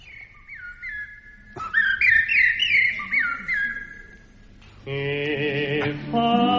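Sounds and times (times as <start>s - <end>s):
person whistling bird song imitation on an old record at wrong speed: 0.0s - 4.2s
speech: 4.9s - 6.4s.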